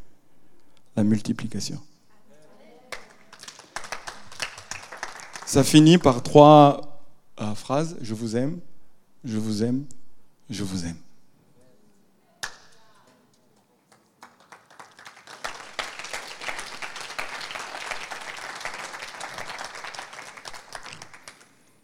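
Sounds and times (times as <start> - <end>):
speech: 1.0 - 1.9, 5.5 - 11.0
audience applause in a reverberant church hall: 2.9 - 5.7, 13.9 - 21.5.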